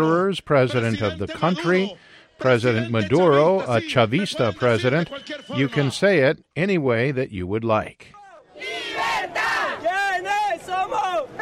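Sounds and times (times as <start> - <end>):
speech: 0.0 - 8.8
crowd of thousands of supporters cheering and shouting at a rally: 8.1 - 11.4.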